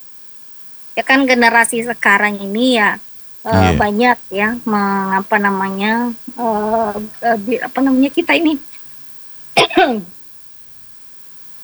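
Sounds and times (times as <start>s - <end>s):
speech: 1.0s - 8.7s, 9.6s - 10.2s
person with a hoarse voice coughing: 3.5s - 3.9s.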